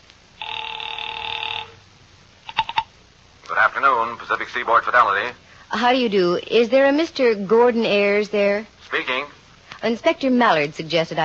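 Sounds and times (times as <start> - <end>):
steady telephone ring tone over the line: 0.4 - 1.8
speech: 3.8 - 11.2.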